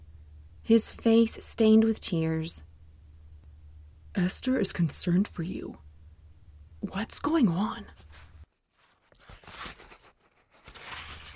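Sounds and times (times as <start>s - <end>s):
speech: 0.7s - 2.7s, 4.2s - 5.8s, 6.8s - 8.0s
stiff paper crackling and rustling as it is unrolled: 8.5s - 11.3s.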